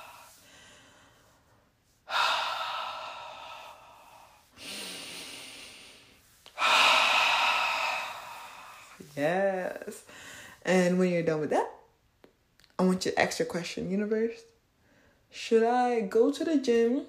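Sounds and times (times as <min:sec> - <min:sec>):
deep belly breathing: 0:00.0 - 0:10.6
speech: 0:09.2 - 0:11.7, 0:12.8 - 0:14.5, 0:15.3 - 0:17.0.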